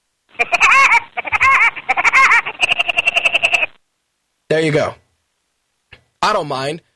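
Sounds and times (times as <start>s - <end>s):
cartoon woodpecker's signature laugh: 0.4s - 3.8s
speech: 4.6s - 5.0s, 6.2s - 6.9s.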